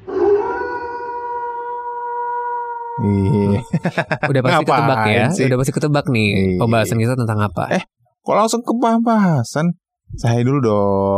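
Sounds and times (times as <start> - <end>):
wolf howling: 0.0 - 3.0
laughter: 3.0 - 5.6
speech: 3.0 - 11.1.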